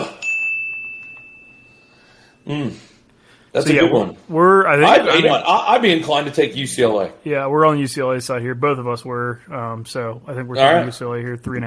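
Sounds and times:
single bright bell ding: 0.0s - 2.4s
speech: 2.4s - 3.0s, 3.6s - 11.6s.

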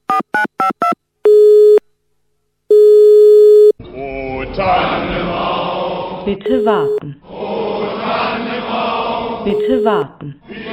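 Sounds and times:
long steady telephone line tones after dialing a Christmas Island number: 0.1s - 1.8s, 2.7s - 3.8s, 6.5s - 7.1s, 9.5s - 10.1s
telephone line short beeps at shifting pitch after dialing a Christmas Island number: 0.8s - 1.8s, 2.7s - 3.8s, 6.5s - 7.0s
speech: 6.3s - 7.3s, 8.1s - 10.7s.

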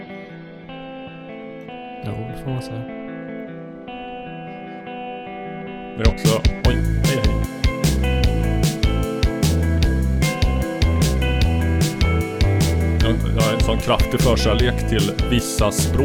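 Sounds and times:
speech: 2.0s - 3.0s, 6.0s - 7.2s, 13.7s - 16.0s
modern Russian pop song: 5.9s - 16.0s.

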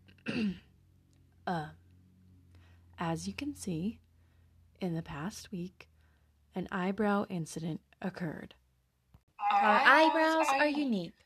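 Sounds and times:
woman clearing her throat: 0.3s - 0.7s
speech: 0.4s - 0.6s, 1.5s - 1.8s, 3.0s - 4.0s, 4.8s - 5.9s, 6.6s - 8.6s, 9.4s - 11.2s.

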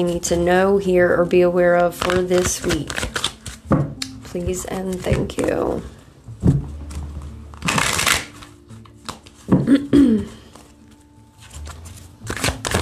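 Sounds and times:
speech: 0.0s - 6.0s
tarot cards being shuffled by hand: 1.3s - 5.8s, 6.5s - 9.7s, 10.5s - 12.8s.

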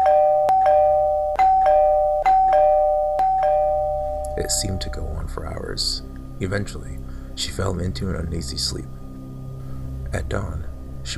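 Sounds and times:
electronic two-tone doorbell ringing: 0.0s - 5.2s
speech: 4.4s - 9.0s, 10.1s - 11.1s.

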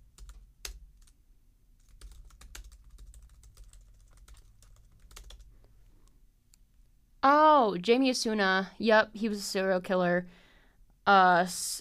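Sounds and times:
low steady hum: 0.0s - 11.7s
typing on a computer keyboard: 0.1s - 1.2s, 1.8s - 5.5s
speech: 7.2s - 10.4s, 11.1s - 11.7s.

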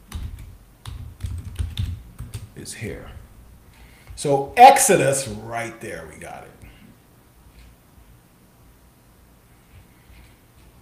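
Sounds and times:
typing on a computer keyboard: 0.0s - 2.5s
speech: 2.6s - 3.2s, 4.2s - 6.7s.

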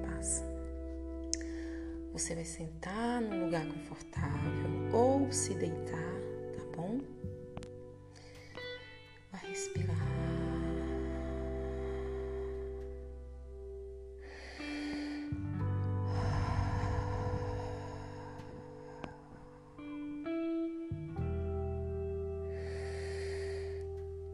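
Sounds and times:
soft sustained musical drone: 0.0s - 24.3s
conscious circular breathing with slow deep inhales and exhales: 0.7s - 2.1s, 8.0s - 9.2s, 10.7s - 20.2s, 22.2s - 24.3s
speech: 2.2s - 7.4s.

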